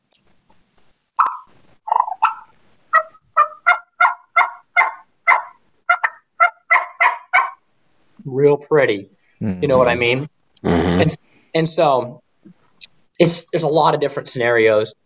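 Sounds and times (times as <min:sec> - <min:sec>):
turkey hen yelp made on a turkey call: 0:01.2 - 0:07.6
speech: 0:08.2 - 0:12.2, 0:13.2 - 0:15.0.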